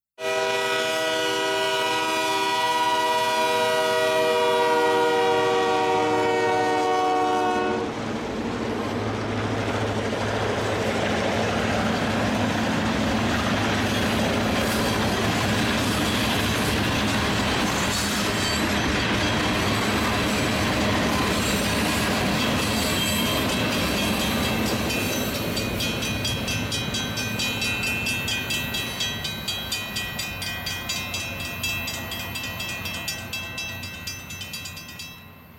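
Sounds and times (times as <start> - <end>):
train horn: 0.2 - 8.0
train rumbling and clattering through a city: 4.4 - 35.5.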